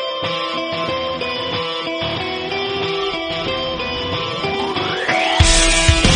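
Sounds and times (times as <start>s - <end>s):
incoming call ringtone: 0.2s - 6.0s.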